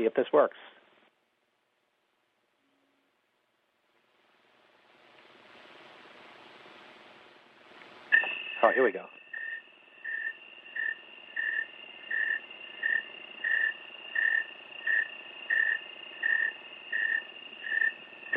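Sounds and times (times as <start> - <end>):
speech: 0.0 - 0.8, 8.6 - 9.2
faint constant insect hum: 0.0 - 18.3
snowy tree cricket chirping: 5.0 - 18.3.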